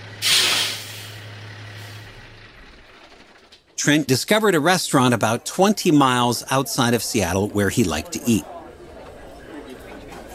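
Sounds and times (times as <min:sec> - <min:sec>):
air brakes hissing on an eighteen-wheeler truck: 0:00.2 - 0:02.2
speech: 0:03.8 - 0:08.6.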